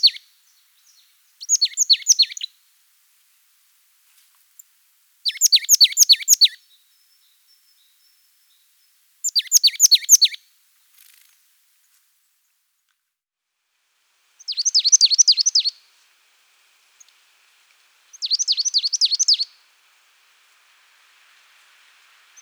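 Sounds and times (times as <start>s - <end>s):
marsh tit Parus palustris singing: 0.0s - 0.2s, 1.4s - 2.5s, 5.3s - 6.6s, 9.2s - 10.4s, 14.4s - 15.8s, 18.1s - 19.5s.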